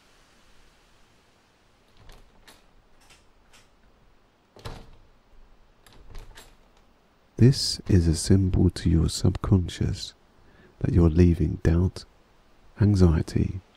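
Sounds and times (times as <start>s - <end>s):
sharp clicks and rattles: 1.9s - 4.0s, 5.8s - 6.9s
door shutting with a solid thump: 1.9s - 5.2s, 5.8s - 6.9s
speech: 7.4s - 10.2s, 10.8s - 12.1s, 12.8s - 13.7s.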